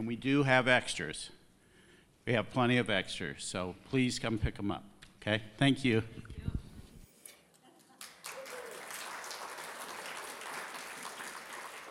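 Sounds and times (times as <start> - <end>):
speech: 0.0 - 1.4, 2.3 - 6.3
congregation applause: 8.0 - 11.9.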